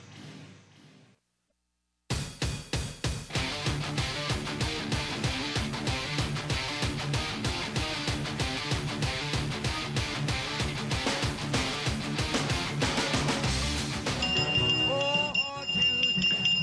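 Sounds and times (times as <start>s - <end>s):
busy rhythmic music bed: 2.1s - 16.6s
small Liberty Bell replica handbell ringing on desk: 14.2s - 16.6s.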